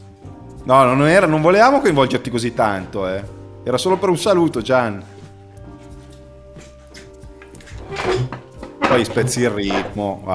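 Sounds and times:
speech: 0:00.6 - 0:05.2, 0:08.9 - 0:10.3
chair pulled up, knocking and scraping against the floor: 0:05.8 - 0:10.0.

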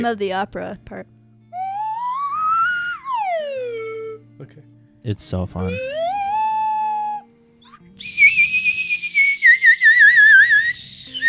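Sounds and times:
speech: 0:00.0 - 0:01.2, 0:04.4 - 0:06.0
slide whistle: 0:01.6 - 0:04.2, 0:05.6 - 0:11.2.

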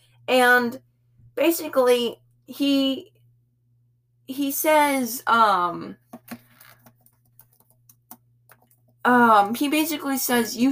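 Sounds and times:
low steady hum: 0:00.0 - 0:10.6
speech: 0:00.3 - 0:03.1, 0:04.3 - 0:06.4, 0:09.0 - 0:10.6
quiet keyboard typing during an online search: 0:06.2 - 0:08.9.

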